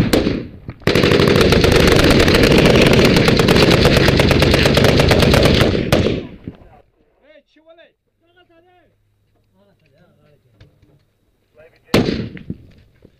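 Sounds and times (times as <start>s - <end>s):
automatic gunfire in actual military combat: 0.0s - 6.4s.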